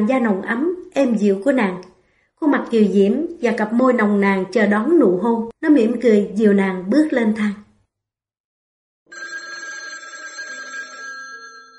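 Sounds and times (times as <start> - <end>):
speech: 0.0 - 7.6
telephone ringing in a bedroom: 9.1 - 11.7.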